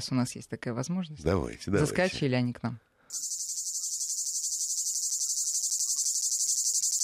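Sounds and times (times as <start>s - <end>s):
speech: 0.0s - 3.4s
cicada song of Krasnodar Krai in southern Russia around Sochi: 3.1s - 7.0s.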